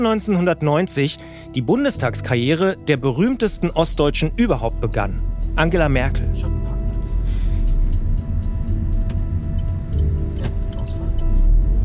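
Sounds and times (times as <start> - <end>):
speech: 0.0 - 6.6
car driving at speed on a new four-lane motorway heard from inside: 6.7 - 11.8.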